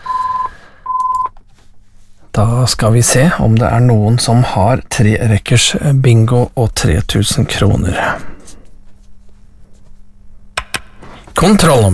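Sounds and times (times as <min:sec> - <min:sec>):
telephone ringing with electronic tone bursts during a bingo game: 0:00.0 - 0:01.4
speech: 0:02.4 - 0:08.3, 0:11.4 - 0:11.9.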